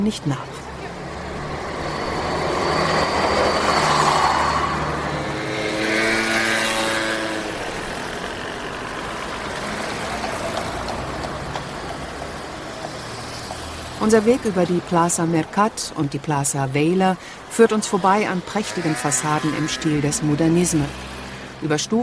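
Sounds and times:
speech: 0.0 - 0.6, 14.0 - 22.0
bus or motorcycle engine passing: 0.0 - 22.0
steady roar of busy city traffic: 0.0 - 22.0.

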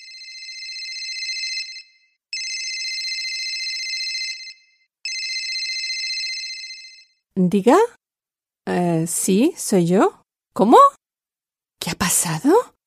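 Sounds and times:
office telephone ringing with bright electronic trills: 0.0 - 7.2
speech: 7.4 - 8.0, 8.7 - 11.0, 11.8 - 12.8.

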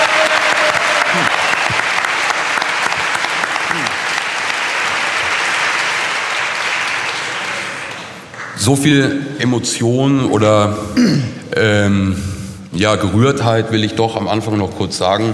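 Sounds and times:
audience applause of many hands clapping: 0.0 - 8.6
speech: 8.7 - 15.3.

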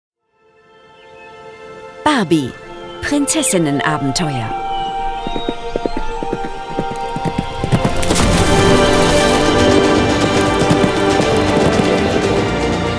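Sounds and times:
speech: 2.2 - 4.6
hoofbeats of a white horse ridden through a forest: 4.0 - 12.9.

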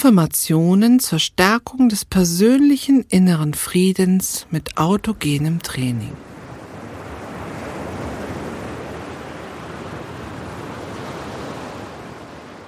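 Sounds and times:
speech: 0.0 - 6.3
ocean surf washing onto the shore: 4.3 - 12.6.

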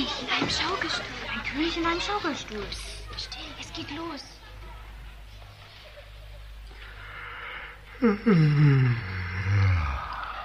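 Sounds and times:
speech: 0.4 - 4.4, 8.0 - 9.2
man yawning with a groaning exhale: 7.9 - 10.4.

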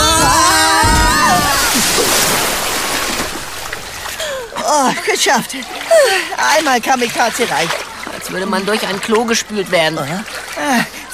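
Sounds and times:
excited voices crying out: 0.0 - 2.6
bodies plunging into a pool: 0.0 - 11.1
speech: 5.2 - 11.1.

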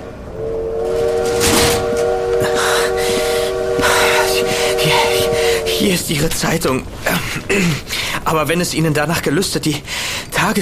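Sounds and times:
train departure whistle: 0.0 - 6.9
departing train hissing: 0.0 - 8.3
departing train rumbling: 0.0 - 10.6
speech: 5.8 - 10.6.

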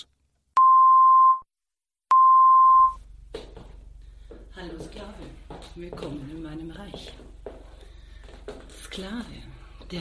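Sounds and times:
mid-pitched beep tones for a headphone left-right check: 0.6 - 1.5, 2.1 - 3.0
speech: 4.6 - 7.4, 9.0 - 10.0.

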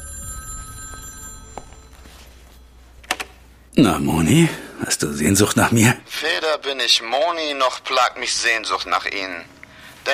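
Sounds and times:
telephone ringing with steady electronic tone: 0.0 - 3.4
speech: 3.8 - 10.1.

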